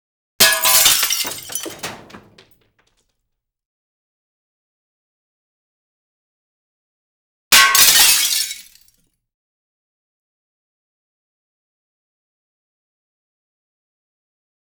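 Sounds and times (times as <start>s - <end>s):
medium glass pane dropping: 0.4s - 2.6s.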